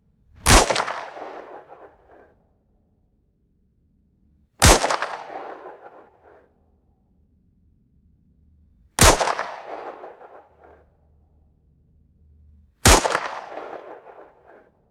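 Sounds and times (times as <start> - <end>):
revolver gunshots fired outdoors: 0.4 - 2.3, 4.6 - 6.4, 9.0 - 10.8, 12.8 - 14.6.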